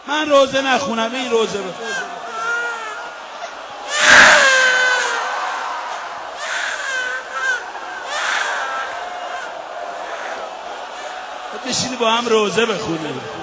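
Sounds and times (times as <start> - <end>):
speech: 0.1 - 2.3, 11.6 - 13.4
baby crying: 1.8 - 11.2.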